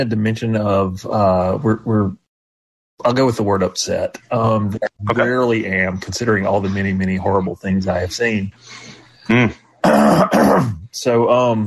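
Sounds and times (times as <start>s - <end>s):
speech: 0.0s - 2.2s, 3.0s - 11.6s
person clearing throat: 9.3s - 10.9s.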